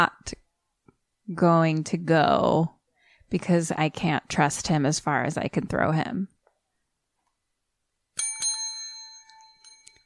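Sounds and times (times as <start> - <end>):
speech: 0.0 - 0.4, 1.3 - 6.3
bicycle bell dings: 8.2 - 10.0.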